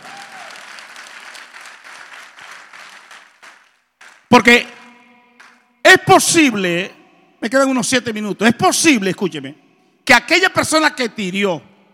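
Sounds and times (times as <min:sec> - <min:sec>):
audience applauding: 0:00.0 - 0:04.3
speech: 0:04.3 - 0:04.8, 0:05.9 - 0:11.7.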